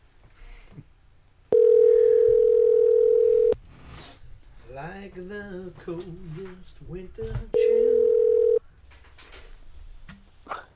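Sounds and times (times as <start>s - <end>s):
telephone tone while calling someone back: 1.5s - 3.6s, 7.6s - 8.6s
speech: 5.2s - 8.1s.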